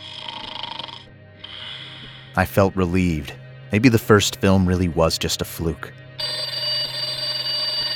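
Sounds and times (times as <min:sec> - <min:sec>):
man snoring while sleeping in bed: 0:00.0 - 0:02.5
speech: 0:02.4 - 0:06.0
electronic alarm clock buzzing: 0:06.2 - 0:07.9.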